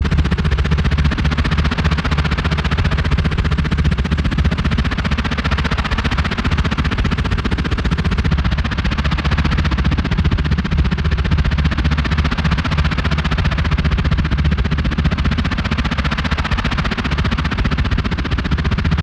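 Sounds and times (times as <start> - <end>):
futuristic sci-fi rotor engine passing by: 0.0 - 19.0.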